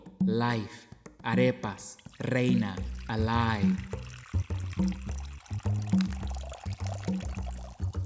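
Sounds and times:
speech: 0.3 - 4.2, 4.8 - 5.1
water pouring into a large bowl to make arepa dough: 1.6 - 8.0.

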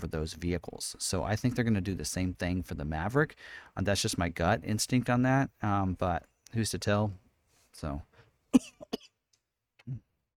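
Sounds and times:
speech: 0.0 - 7.2, 7.8 - 9.1
lower rougher throat clearing: 8.6 - 9.2, 9.8 - 10.1
person coughing to clear a tickle in the throat: 8.6 - 9.2.

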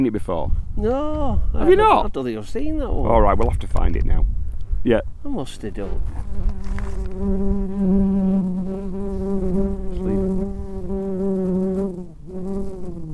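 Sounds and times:
speech: 0.0 - 8.2
bee buzzing near microphone: 5.5 - 13.1.

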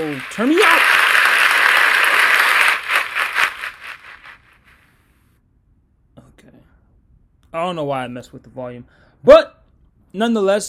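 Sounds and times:
crowd applauding: 0.0 - 4.4
speech: 0.1 - 1.1, 7.6 - 10.6.

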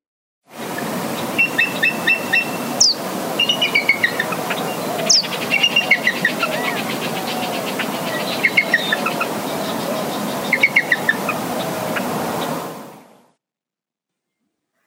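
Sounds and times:
bald eagle high-pitched piping calls: 1.2 - 12.5.

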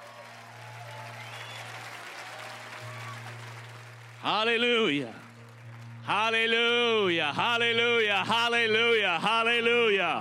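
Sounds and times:
church congregation applauding with hand claps during a worship service: 0.0 - 9.5
speech: 4.2 - 5.2, 6.1 - 10.2.

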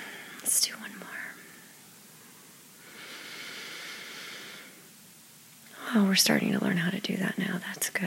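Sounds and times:
speech: 0.6 - 1.4, 5.9 - 8.0
slow deep belly breath in and out: 2.2 - 4.9.

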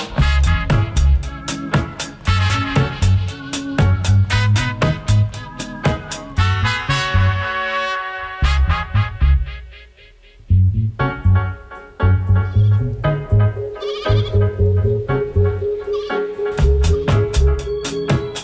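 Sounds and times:
music track beat and bass: 0.1 - 7.5, 8.4 - 9.7, 10.4 - 18.4
goat bleats chopped into a rhythmic music track: 13.8 - 14.6, 15.9 - 16.4.

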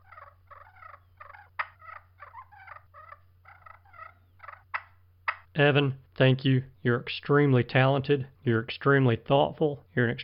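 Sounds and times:
turkey purrs played on a purr pot turkey call: 0.0 - 5.5
speech: 5.6 - 10.2.

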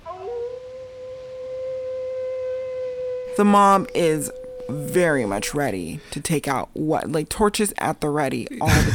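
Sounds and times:
single long wolf howl in a film scene: 0.0 - 5.9
speech: 3.4 - 8.9
laughter: 8.6 - 8.9.

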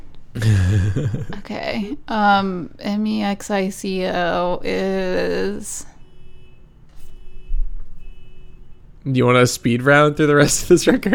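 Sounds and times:
low rumble: 0.0 - 11.1
laughter: 0.4 - 2.1
speech: 0.4 - 5.9, 9.0 - 11.1
faint electronic alarm beeping outside: 4.5 - 9.1.

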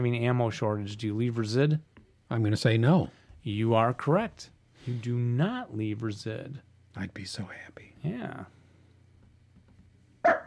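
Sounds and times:
speech: 0.0 - 8.6
faint low hum: 0.0 - 10.4
small dog barking sharply: 10.2 - 10.4.

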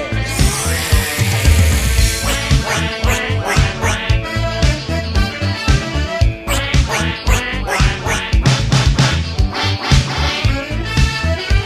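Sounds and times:
duck quacking: 0.2 - 11.5.

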